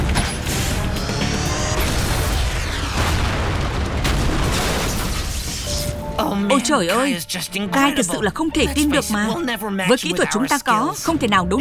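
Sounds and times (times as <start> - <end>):
energy beam attack blast in an animated battle scene: 0.0 - 5.9
speech: 6.5 - 11.6.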